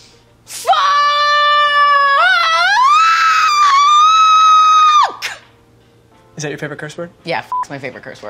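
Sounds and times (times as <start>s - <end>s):
person acting out a bungee-jump scream: 0.6s - 5.4s
speech: 6.4s - 8.2s.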